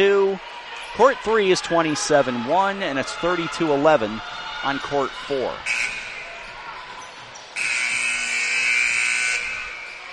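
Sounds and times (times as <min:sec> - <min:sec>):
speech: 0:00.0 - 0:06.0
harsh electronic buzzer at a court game: 0:05.7 - 0:06.3, 0:07.6 - 0:10.0.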